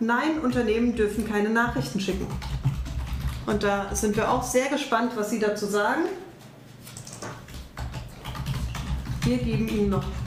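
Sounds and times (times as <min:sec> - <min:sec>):
speech: 0:00.0 - 0:02.8, 0:03.4 - 0:06.2, 0:09.3 - 0:10.2
low hum: 0:00.0 - 0:10.2
fast typing on a computer keyboard: 0:00.4 - 0:04.5, 0:06.9 - 0:10.2.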